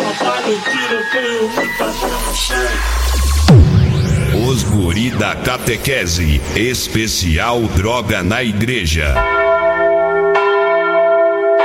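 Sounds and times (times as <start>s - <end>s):
speech: 0.5s - 3.8s, 4.4s - 9.4s
church bell ringing: 9.2s - 11.6s.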